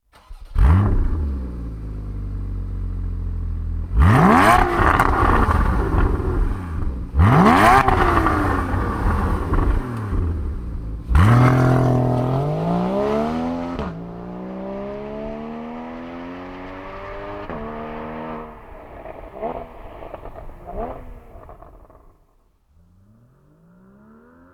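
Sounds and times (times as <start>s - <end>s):
Porsche Boxster GT and Cayman GTS engine: 0.0s - 24.5s.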